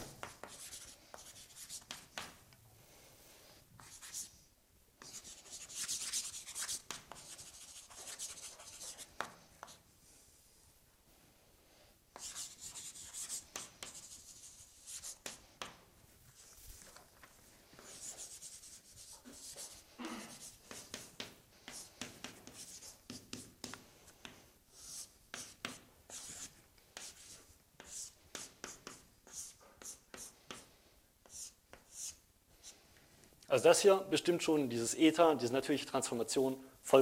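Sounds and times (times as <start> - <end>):
pen or chalk handwriting strokes during a mathematics lecture: 0.1 - 2.4, 3.8 - 4.3, 5.0 - 9.8, 12.2 - 17.1, 17.8 - 32.2
speech: 33.6 - 37.0.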